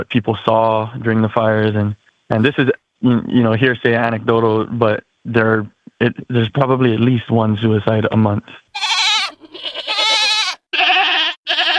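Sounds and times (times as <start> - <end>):
speech: 0.0 - 8.9
goats bleating: 8.8 - 11.7.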